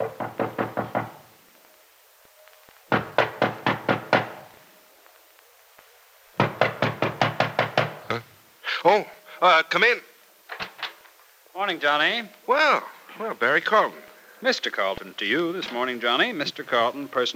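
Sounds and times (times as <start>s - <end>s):
firm rapid knocking on an office door: 0.0s - 1.2s, 2.9s - 4.4s, 6.4s - 8.1s
speech: 8.9s - 10.1s, 11.6s - 17.3s.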